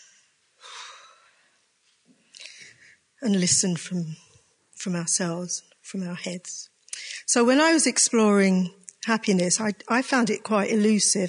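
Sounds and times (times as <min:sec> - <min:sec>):
deep breath drawn in: 0:00.1 - 0:01.6
speech: 0:03.2 - 0:11.2.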